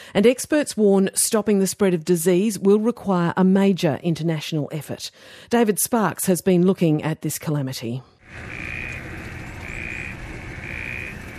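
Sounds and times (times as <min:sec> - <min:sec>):
speech: 0:00.1 - 0:08.8
frogs croaking in floodwaters in northern Mozambique: 0:08.2 - 0:11.3
shrill trilling frog calls: 0:08.4 - 0:11.3.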